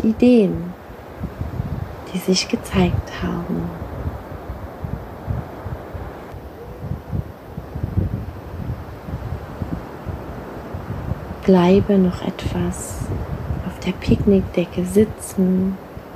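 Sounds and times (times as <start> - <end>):
speech: 0.0 - 1.4, 2.1 - 3.8, 11.5 - 15.8
low rumbling wind buffeting the microphone: 0.0 - 16.1
ocean surf washing on a sandy shore: 0.0 - 16.1.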